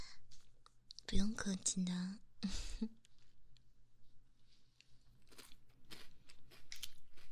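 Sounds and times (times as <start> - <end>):
speech: 1.1 - 3.0
crunching a seaweed-flavored snack: 4.8 - 7.3.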